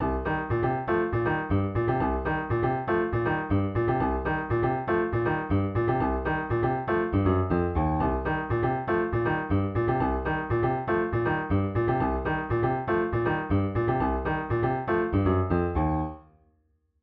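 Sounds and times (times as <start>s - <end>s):
funk riff on piano: 0.0s - 16.2s.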